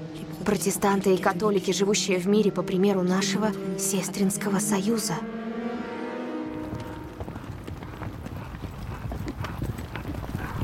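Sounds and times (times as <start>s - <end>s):
speech: 0.5s - 5.4s
horses carrying riders galloping across a field: 6.5s - 10.6s.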